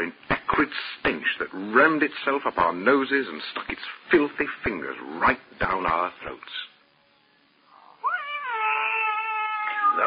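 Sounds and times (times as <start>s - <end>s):
speech: 0.0s - 6.7s
cat caterwauling: 7.9s - 10.0s.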